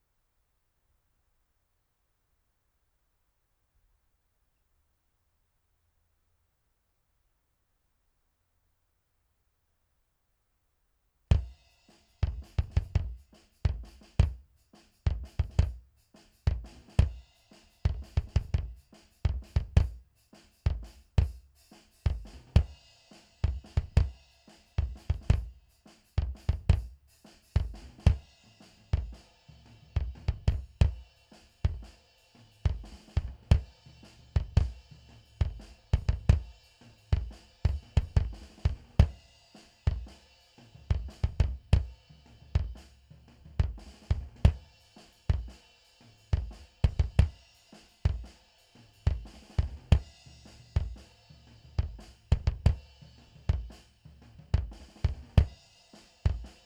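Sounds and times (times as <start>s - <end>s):
mono bass drum: 11.3s - 11.6s, 12.2s - 22.8s, 23.4s - 24.2s, 24.8s - 32.0s, 32.6s - 45.6s, 46.3s - 47.4s, 48.1s - 48.3s, 49.0s - 55.6s.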